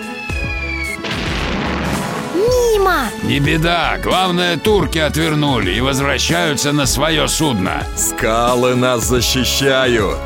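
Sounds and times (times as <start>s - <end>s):
ship's cannon fired at a small boat: 1.0s - 2.3s
speech: 2.4s - 10.2s.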